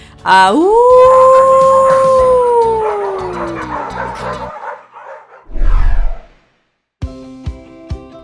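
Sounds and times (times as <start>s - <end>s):
dog howling: 0.6s - 6.3s.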